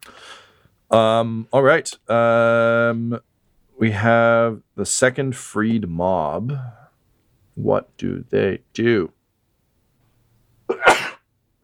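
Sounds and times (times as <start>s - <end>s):
speech: 0.9s - 6.8s, 7.6s - 9.2s
person sneezing: 10.7s - 11.3s.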